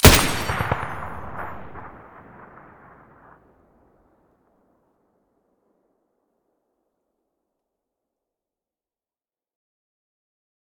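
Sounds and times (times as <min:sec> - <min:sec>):
M249 machine gun muzzle blast: 0:00.0 - 0:02.8.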